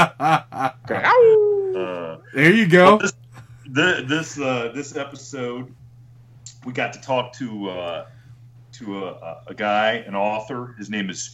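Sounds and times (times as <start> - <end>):
speech: 0.0 - 5.8, 6.6 - 8.2, 8.8 - 11.3
person imitating an animal howl: 0.9 - 2.2
person voicing short clipped yelps: 0.9 - 2.2.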